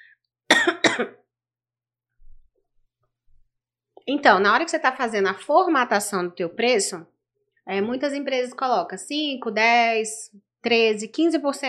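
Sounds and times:
person coughing: 0.5 - 1.2
speech: 1.0 - 1.2, 4.0 - 7.1, 7.7 - 11.6.

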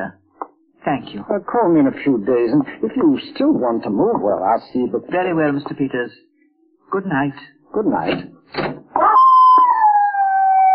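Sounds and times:
speech: 0.8 - 6.3, 6.9 - 9.2
dog howling: 9.0 - 10.7.

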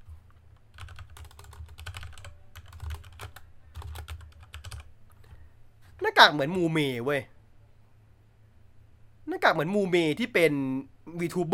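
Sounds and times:
typing on a computer keyboard: 0.0 - 4.9
low steady hum: 0.0 - 11.5
speech: 6.1 - 7.3, 9.5 - 11.5.

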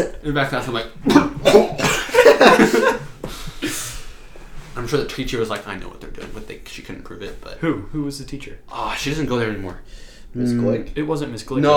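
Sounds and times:
speech: 0.0 - 3.0, 4.8 - 11.7
person imitating a hard coughing fit: 1.0 - 3.0
laughter: 1.2 - 3.5.

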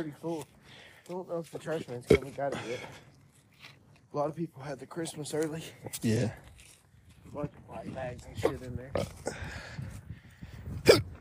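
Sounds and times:
speech: 0.0 - 6.5, 7.3 - 9.9
quiet breathy murmurs: 8.4 - 11.1
single sharp loud hiccup: 10.8 - 11.1.

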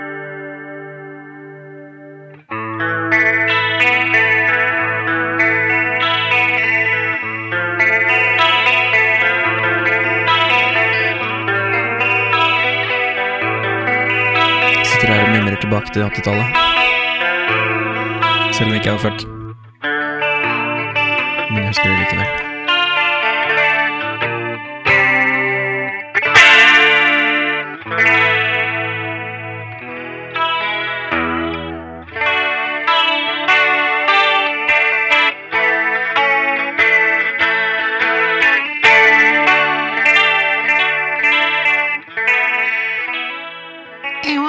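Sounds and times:
guitar playing chorus-effected chords and arpeggios: 0.0 - 44.4
speech: 15.8 - 17.0, 18.6 - 19.4, 21.7 - 22.5.

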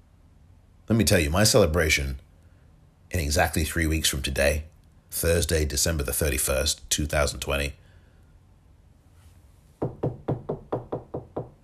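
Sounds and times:
speech: 0.9 - 2.3, 3.1 - 7.8
knocking on wood: 9.8 - 11.6.

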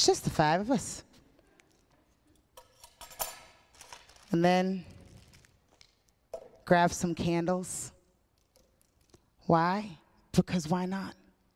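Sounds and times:
speech: 0.0 - 1.1, 4.3 - 4.9, 6.7 - 8.0, 9.5 - 11.2
cutlery clinking as it is handled: 2.3 - 4.0.

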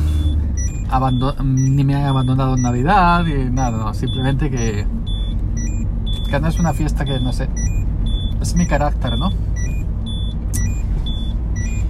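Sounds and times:
car driving through city streets heard from inside: 0.0 - 11.8
short high electronic chirps: 0.6 - 11.8
speech: 0.9 - 5.1, 6.3 - 7.8, 8.4 - 9.5.

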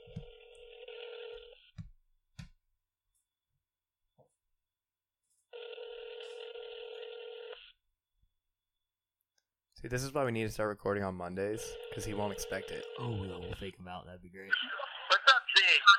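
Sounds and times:
phone call ringing on the line: 0.0 - 1.7, 5.5 - 7.7, 11.7 - 13.6
speech: 9.8 - 14.8.

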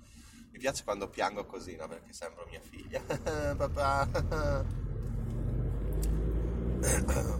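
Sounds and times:
car engine rumbling in a traffic queue: 0.0 - 7.3
speech: 0.6 - 4.8, 6.8 - 7.3
laughter: 2.8 - 4.8
road noise burst as vehicles shift: 3.1 - 7.3.

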